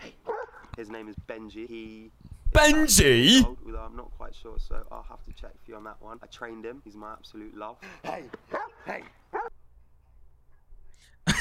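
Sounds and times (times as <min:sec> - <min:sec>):
dog barking sharply: 0:00.2 - 0:00.7, 0:08.1 - 0:09.5
speech: 0:00.8 - 0:09.4.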